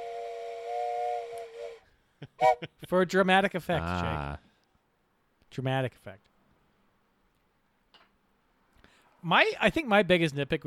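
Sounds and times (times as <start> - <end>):
steam train whistle blast: 0.0 - 2.7
speech: 2.4 - 4.5, 5.5 - 6.3, 9.2 - 10.6.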